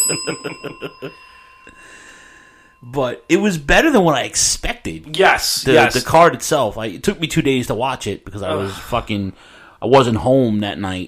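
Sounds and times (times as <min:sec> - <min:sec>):
bell ringing: 0:00.0 - 0:03.4
speech: 0:00.1 - 0:02.0, 0:02.8 - 0:11.0.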